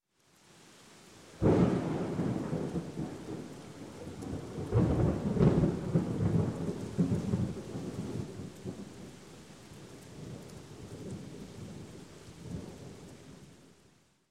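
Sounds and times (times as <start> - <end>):
rain: 0.0 - 14.2
thunder clap: 1.4 - 3.5, 4.2 - 8.3.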